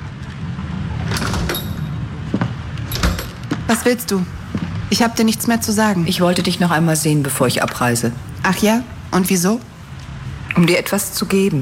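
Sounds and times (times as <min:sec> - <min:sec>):
sliding door opening with a mechanical rattle and squeak: 0:00.9 - 0:02.1, 0:02.8 - 0:03.6
sliding door thudding as it settles: 0:02.9 - 0:03.6
speech: 0:03.7 - 0:09.7, 0:10.6 - 0:11.6.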